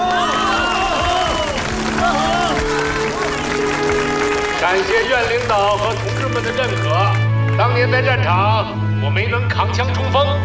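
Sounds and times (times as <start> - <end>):
cheering: 0.0 - 7.1
crowd voices: 0.0 - 7.7
large audience applauding: 0.0 - 7.8
speech: 4.7 - 10.4.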